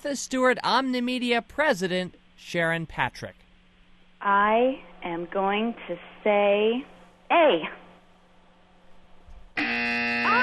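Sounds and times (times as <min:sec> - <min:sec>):
speech: 0:00.0 - 0:03.4, 0:04.2 - 0:07.8
quiz show buzzer: 0:09.6 - 0:10.4.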